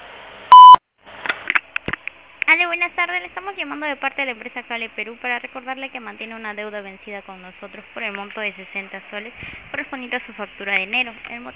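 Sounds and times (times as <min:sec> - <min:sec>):
voicemail beep on a mobile carrier's voicemail system: 0:00.5 - 0:00.8
faint scattered noises: 0:00.5 - 0:11.5
speech: 0:02.6 - 0:11.5.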